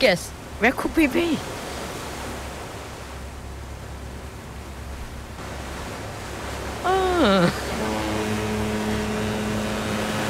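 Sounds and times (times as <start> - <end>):
speech: 0.0 - 1.6
rushing wash of wind and water on the open sea: 0.0 - 10.2
steady low droning hum aboard an ocean liner on the open sea: 2.2 - 10.2
tone sliding downward in pitch aboard an ocean liner: 6.8 - 10.2.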